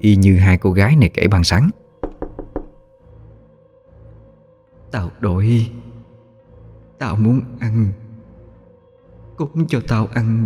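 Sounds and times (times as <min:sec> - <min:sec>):
speech: 0:00.0 - 0:01.8, 0:04.9 - 0:05.8, 0:07.0 - 0:08.0, 0:09.4 - 0:10.4
knocking on a door: 0:02.0 - 0:02.9.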